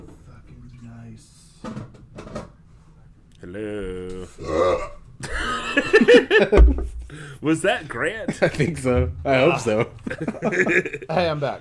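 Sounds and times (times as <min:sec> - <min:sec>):
speech: 0:01.2 - 0:02.0, 0:03.4 - 0:04.6, 0:06.0 - 0:11.5
person burping after drinking carbonated water: 0:04.4 - 0:05.0
laughter: 0:05.2 - 0:07.0, 0:09.5 - 0:11.4.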